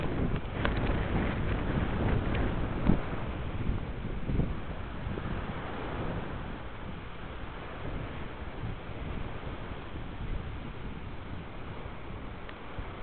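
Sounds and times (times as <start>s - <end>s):
warm wind blowing across the microphone: 0.0s - 13.0s.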